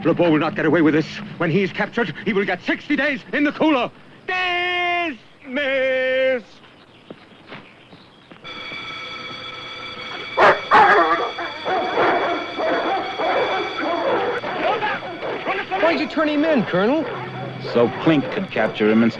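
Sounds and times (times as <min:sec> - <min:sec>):
speech: 0:00.0 - 0:06.6, 0:15.9 - 0:19.1
alarm siren blasts in a camp: 0:08.4 - 0:19.1
pack of released dogs barking and yelping: 0:09.8 - 0:19.1.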